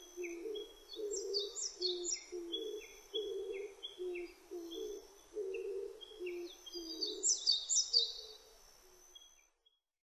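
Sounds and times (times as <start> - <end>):
Oriental turtle dove cooing in low rough notes: 0.0 - 7.4.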